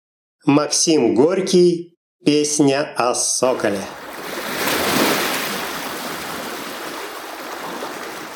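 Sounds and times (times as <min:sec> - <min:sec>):
speech: 0:00.4 - 0:04.1
gentle sea waves washing against the shore: 0:03.6 - 0:08.3.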